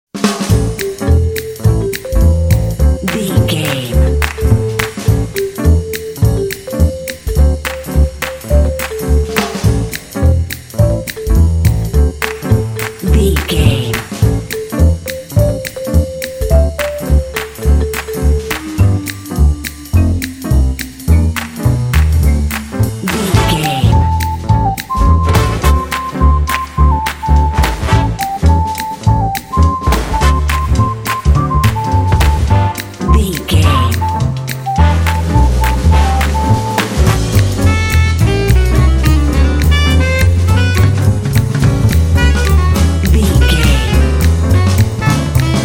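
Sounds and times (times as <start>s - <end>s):
hipster jazz advertising jingle: 0.2s - 45.6s.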